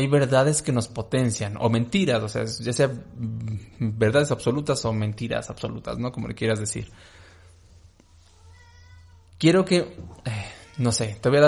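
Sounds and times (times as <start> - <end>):
speech: 0.0 - 7.2, 9.4 - 11.4
steady low electrical hum: 0.0 - 11.4
domestic cat meowing in a drawn-out tonal call: 8.2 - 9.4, 10.4 - 11.2.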